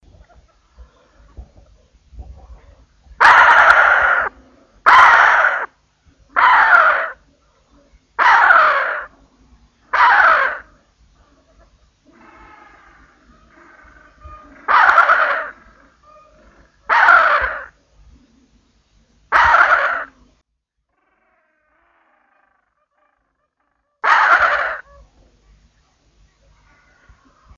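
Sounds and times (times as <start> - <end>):
Antarctic skua Stercorarius antarcticus calling: 2.6 - 5.7, 6.4 - 9.1, 9.8 - 18.4, 19.3 - 20.3, 21.7 - 27.5.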